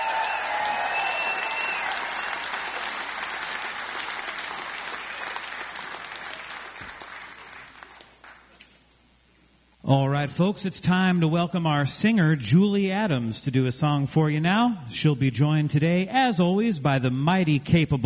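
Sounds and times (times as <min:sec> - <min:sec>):
audience applause after a live music performance: 0:00.0 - 0:08.6
speech: 0:09.9 - 0:18.0.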